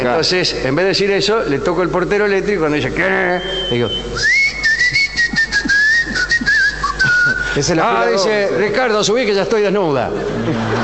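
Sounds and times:
speech: 0.0 - 4.4, 7.6 - 10.8
person whistling a wavering tune: 3.4 - 7.7
laughter: 4.8 - 9.0, 9.8 - 10.8.

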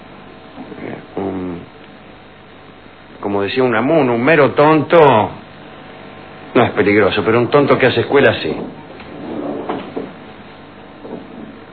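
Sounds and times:
steady hum of room noise: 0.0 - 11.7
speech: 3.4 - 5.4, 6.6 - 8.8
chairs scraping across a floor: 8.4 - 10.2, 11.0 - 11.7.

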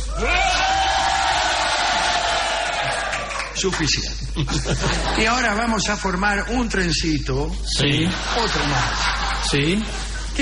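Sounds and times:
group of people yelling together: 0.0 - 3.3
speech: 3.6 - 10.4
laughter: 4.2 - 5.7, 7.9 - 10.4.

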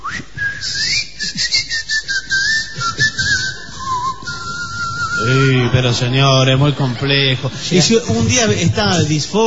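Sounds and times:
person whistling a wavering tune: 0.0 - 5.7
laughter: 2.7 - 9.4
speech: 5.2 - 9.4.

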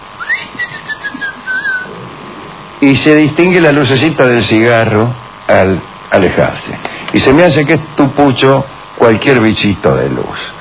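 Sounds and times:
faint hiss: 0.0 - 10.5
loud shrill deafening whistle: 0.2 - 1.9
speech: 2.8 - 10.5.

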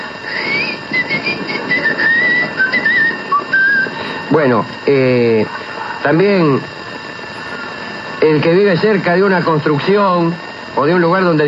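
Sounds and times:
steady noisy hiss: 0.0 - 11.4
thin high-pitched whistle imitating ringing ears: 0.3 - 4.0
speech: 4.4 - 6.8, 8.2 - 11.4.

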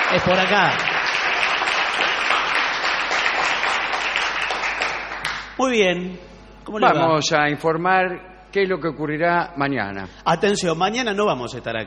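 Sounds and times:
audience applause in a small shed: 0.0 - 5.6
speech: 0.1 - 0.9, 5.6 - 11.8.

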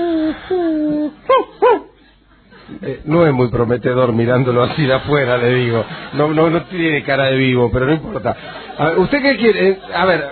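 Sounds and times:
dog whimpering: 0.0 - 1.9
dog barking: 1.3 - 1.9
speech: 2.8 - 10.3
laughter: 4.6 - 10.3.

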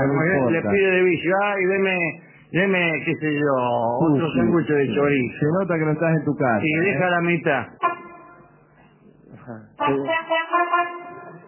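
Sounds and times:
speech: 0.0 - 7.9, 9.5 - 11.0
loud brassy horn honk: 7.8 - 8.5, 9.8 - 11.4.

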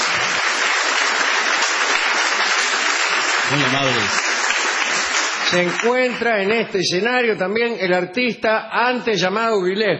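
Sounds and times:
audience applause in a warehouse-style venue: 0.0 - 6.7
speech: 3.5 - 4.3, 5.5 - 9.9.

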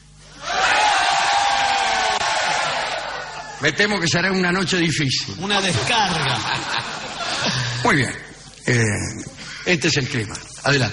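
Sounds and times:
audience at a live show in Madrid yelling together: 0.4 - 3.6
speech: 3.6 - 10.9
laughter: 5.4 - 8.4.

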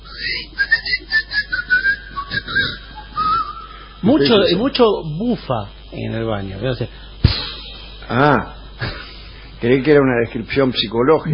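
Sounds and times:
person whistling a wandering melody: 0.1 - 3.9
speech: 4.0 - 7.1, 8.1 - 8.9, 9.6 - 11.3.

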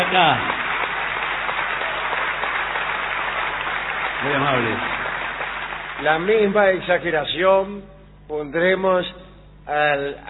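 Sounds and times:
large theater audience applauding: 0.0 - 6.7
speech: 0.1 - 0.5, 4.2 - 5.0, 6.0 - 10.2.

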